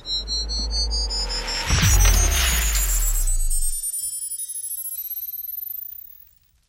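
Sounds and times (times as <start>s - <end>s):
sci-fi teleport sound effect: 0.0s - 4.0s.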